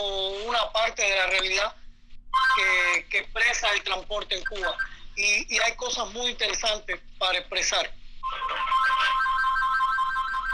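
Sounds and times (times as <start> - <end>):
speech: 0.0 - 1.8, 2.4 - 9.2
electronic phone ringing: 2.4 - 2.9, 8.2 - 10.5.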